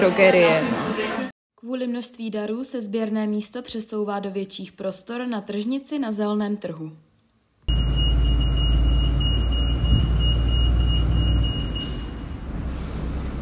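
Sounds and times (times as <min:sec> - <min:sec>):
speech: 0:00.0 - 0:00.8, 0:01.6 - 0:07.1
heavy truck engine rumbling: 0:07.7 - 0:13.4.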